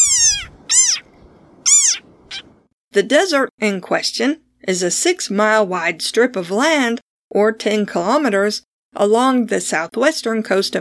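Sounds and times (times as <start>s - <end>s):
desert rain frog squeaky calls: 0.0s - 2.6s
speech: 2.9s - 10.7s.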